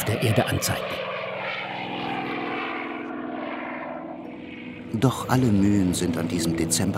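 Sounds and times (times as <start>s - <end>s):
small propeller plane engine roaring at full power during takeoff: 0.0s - 6.9s
speech: 0.1s - 1.0s, 4.9s - 6.9s.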